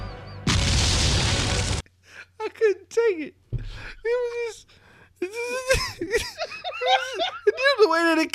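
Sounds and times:
RPG rocket launcher firing with a sharp blast: 0:00.5 - 0:01.8
speech: 0:03.1 - 0:05.6, 0:07.9 - 0:08.3
laughter: 0:05.6 - 0:07.9.

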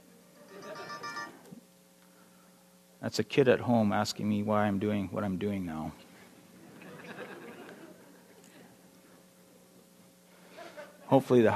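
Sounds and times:
laughter: 0:00.4 - 0:01.3, 0:06.6 - 0:08.7, 0:10.5 - 0:11.1
mobile phone ringtone from inside a pocket: 0:00.5 - 0:01.4
speech: 0:03.0 - 0:06.0, 0:11.2 - 0:11.5.

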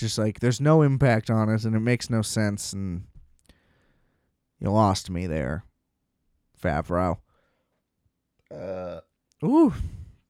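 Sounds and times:
speech: 0:00.0 - 0:03.1, 0:04.6 - 0:05.7, 0:06.6 - 0:07.2, 0:08.5 - 0:10.0
throaty burps: 0:08.4 - 0:09.2.

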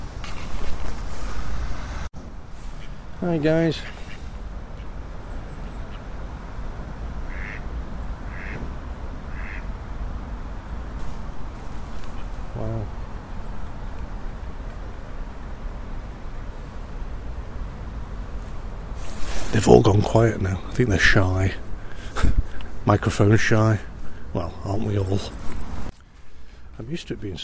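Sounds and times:
steady outdoor hiss: 0:00.0 - 0:27.4
speech: 0:03.2 - 0:04.0, 0:19.6 - 0:21.6, 0:22.9 - 0:25.6, 0:26.8 - 0:27.4
ducks quacking at a pond: 0:07.2 - 0:08.7, 0:09.3 - 0:09.7.

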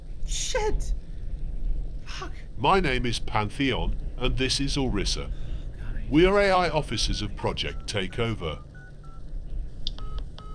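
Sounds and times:
low rumble: 0:00.0 - 0:10.5
speech: 0:00.6 - 0:01.0, 0:02.6 - 0:05.4, 0:06.1 - 0:08.7
touch-tone keypad beeps from a phone being dialed: 0:08.7 - 0:09.2, 0:09.9 - 0:10.5.

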